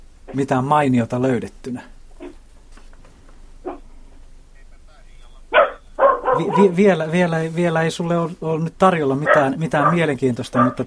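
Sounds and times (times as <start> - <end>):
speech: 0.3 - 1.9, 6.4 - 10.8
dog barking in short sharp bursts: 3.6 - 3.8, 5.5 - 6.8, 9.2 - 10.8.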